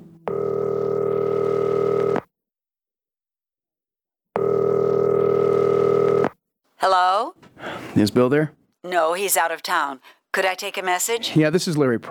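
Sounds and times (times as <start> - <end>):
telephone ring tones of a call placed from a jail: 0.3 - 2.2, 4.4 - 6.2
speech: 8.0 - 12.0.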